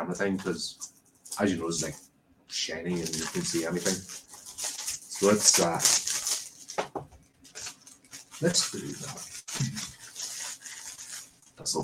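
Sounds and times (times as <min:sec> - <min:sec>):
speech: 0:00.0 - 0:06.0, 0:08.4 - 0:09.9, 0:11.6 - 0:11.8
plastic wrap being peeled and torn off a Blu-ray case: 0:02.9 - 0:06.8, 0:07.4 - 0:11.8.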